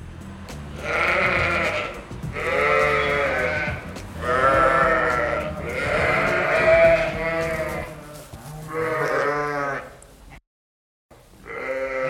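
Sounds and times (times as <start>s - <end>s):
faint farmyard noise: 0.3s - 10.4s, 11.2s - 12.0s
dairy sheep and goats bleating on a farm near Biggar in South Lanarkshire: 0.7s - 10.1s, 11.4s - 12.0s.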